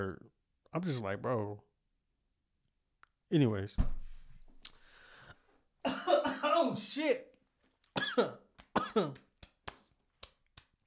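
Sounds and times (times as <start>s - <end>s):
speech: 0.0s - 1.7s, 3.3s - 4.0s, 6.6s - 7.3s, 8.0s - 9.2s
person coughing and choking after swallowing wrong: 5.8s - 6.8s, 8.0s - 9.2s.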